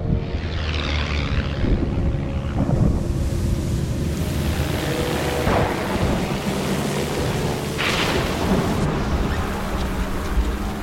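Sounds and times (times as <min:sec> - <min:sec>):
wind and rain roaring around a plane in a thunderstorm: 0:00.1 - 0:10.8
deep rumbling thunder crashes: 0:02.5 - 0:04.7, 0:05.2 - 0:09.6.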